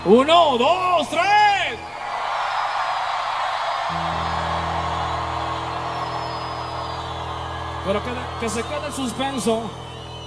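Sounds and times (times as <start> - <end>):
speech: 0.0 - 2.0, 7.9 - 9.9
large crowd cheering with joy: 0.0 - 10.2
high whoops from a crowd: 2.1 - 10.2.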